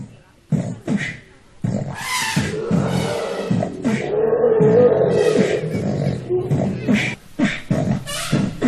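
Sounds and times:
rhythmic beatboxing: 0.0s - 8.6s
elephant roaring calls: 1.9s - 7.2s.

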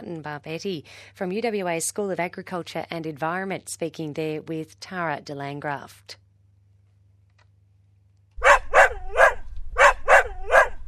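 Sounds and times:
speech: 0.1s - 6.2s
dog barking: 8.4s - 10.8s.

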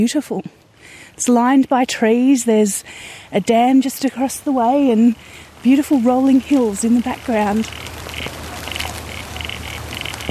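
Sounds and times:
speech: 0.0s - 8.4s
low constant outdoor hum: 0.0s - 10.3s
frogs croaking in a dam: 7.2s - 10.3s.

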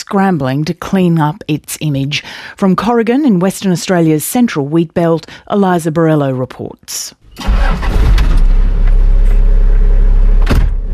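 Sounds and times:
speech: 0.1s - 8.2s
car engine driving around a wheat-belt farm in Western Australia: 7.4s - 10.9s.

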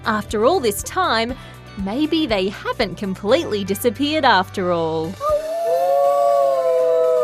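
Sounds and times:
speech: 0.0s - 5.3s
wolf howl: 5.2s - 7.2s.

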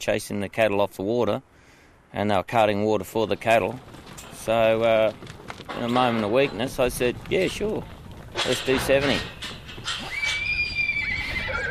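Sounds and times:
speech: 0.0s - 10.1s
wild Brumby horse neighing on a cattle station in Western Australia: 9.7s - 11.7s.

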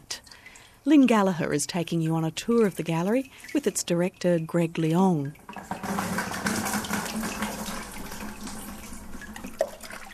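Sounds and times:
speech: 0.8s - 5.8s
running and splashing water during papermaking with wet pulp: 2.1s - 10.1s.

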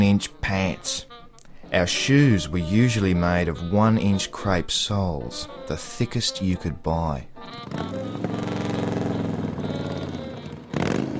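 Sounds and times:
speech: 0.0s - 8.2s
motorbike engine roaring past: 7.5s - 11.1s.

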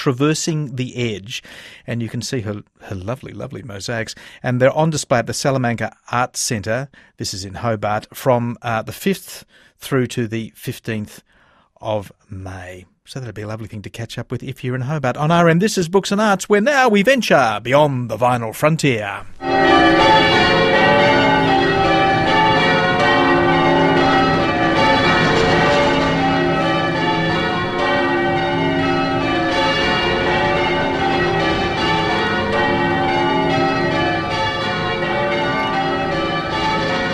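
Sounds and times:
speech: 0.0s - 21.2s
cathedral bells change ringing: 19.4s - 37.1s.

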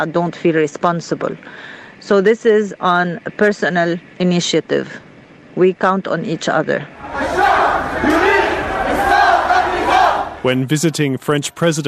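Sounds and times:
speech: 0.0s - 7.1s, 10.4s - 11.8s
large crowd chanting protest slogans in unison: 6.9s - 10.5s.

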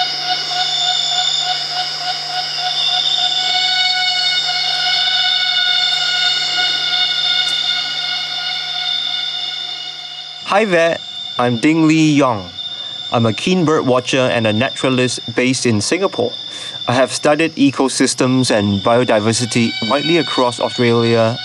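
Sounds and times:
emperor cicada call in Borneo rainforest: 0.0s - 21.4s
speech: 10.5s - 21.4s.

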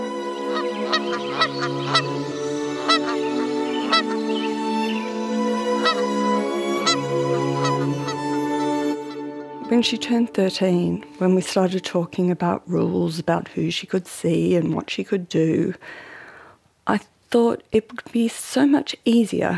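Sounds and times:
goose honking: 0.0s - 10.0s
speech: 0.9s - 3.3s, 9.7s - 16.1s, 16.9s - 19.5s.

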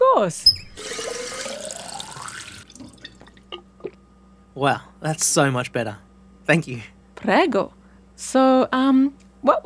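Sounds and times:
speech: 0.2s - 1.0s, 4.6s - 9.6s
water pouring from a tap into a glass: 0.5s - 3.4s.

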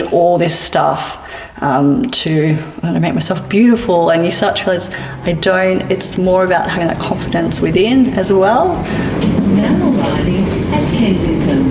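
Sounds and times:
speech: 0.0s - 11.6s
rumble inside a moving train: 6.1s - 11.6s
murmuring voices: 6.2s - 11.6s.

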